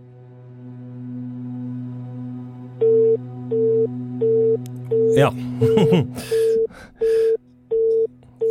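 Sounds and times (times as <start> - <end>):
steady phone line hum: 2.8 - 8.5
speech: 5.2 - 6.4
person laughing: 5.4 - 6.9.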